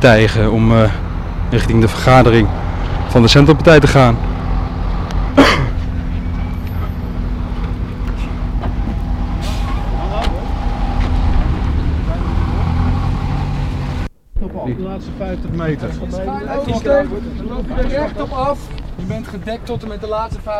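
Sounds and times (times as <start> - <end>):
speech: 0.0 - 4.3, 15.0 - 20.5
bus engine rumbling while driving onto a small square: 0.0 - 20.5.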